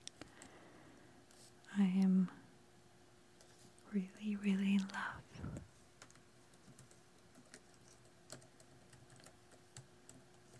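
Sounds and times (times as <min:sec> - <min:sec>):
loud gaming laptop fan hum: 0:00.0 - 0:10.5
speech: 0:01.7 - 0:02.4, 0:03.9 - 0:05.7
typing on a gaming laptop keyboard: 0:05.9 - 0:10.5.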